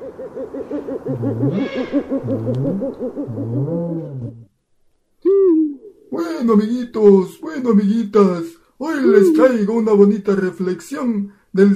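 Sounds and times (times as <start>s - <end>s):
owl hooting: 0.0s - 4.5s, 9.0s - 9.6s
speech: 0.4s - 3.8s, 6.4s - 11.7s.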